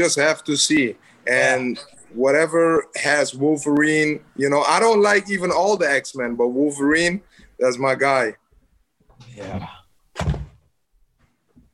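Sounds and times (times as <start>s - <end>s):
speech: 0.0s - 8.4s, 9.2s - 10.4s
office chair being lowered: 10.1s - 10.7s.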